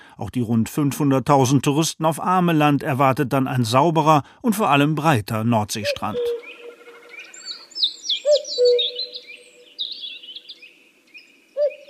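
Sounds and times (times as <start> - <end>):
speech: 0.2 - 6.4
common cuckoo two-note call: 5.8 - 11.8
chorus of high twittering songbirds: 5.9 - 11.8.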